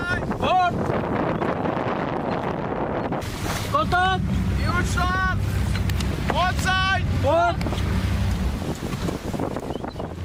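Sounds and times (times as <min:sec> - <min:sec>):
rushing splashing waves at sea: 0:00.0 - 0:10.2
wind at sea: 0:00.0 - 0:10.2
steady low ship engine rumble: 0:02.7 - 0:10.2
speech: 0:03.8 - 0:05.4.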